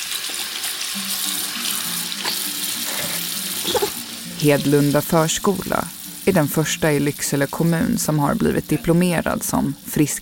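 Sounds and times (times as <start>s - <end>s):
tap water running into a sink at a preschool outside Lycksele: 0.0s - 5.9s
toddler's hands splashing under the stream during handwashing: 3.0s - 4.0s
speech: 3.7s - 10.2s.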